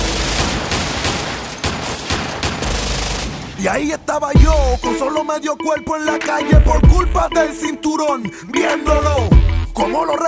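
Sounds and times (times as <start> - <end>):
rifle gunfire aimed at a window: 0.0 - 3.9
speech: 3.6 - 10.2.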